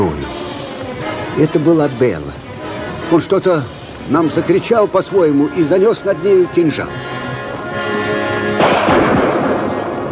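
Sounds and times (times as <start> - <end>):
steady humming music-like tone: 0.0 - 8.6
speech: 1.4 - 2.4, 3.1 - 7.1
rifle shot echoing: 8.6 - 10.0.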